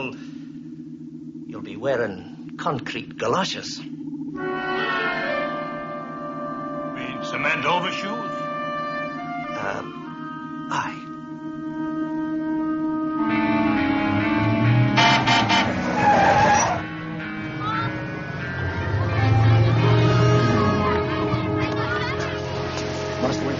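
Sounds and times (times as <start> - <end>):
old car engine rumbling: 0.0 - 23.5
speech: 1.6 - 4.9, 7.3 - 8.4, 10.7 - 11.0
old car horn honking in drawn-out blasts: 4.4 - 11.5, 14.3 - 23.2.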